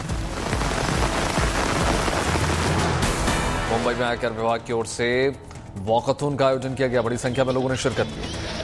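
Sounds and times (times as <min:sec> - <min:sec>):
heavy rain drumming on surfaces in Srinagar: 0:00.0 - 0:03.6
speech: 0:03.8 - 0:08.5.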